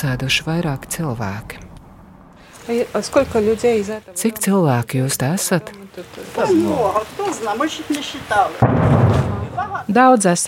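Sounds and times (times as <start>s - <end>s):
speech: 0.0s - 1.6s, 2.6s - 10.4s
loud sharp gunshot-like blast: 8.6s - 9.6s.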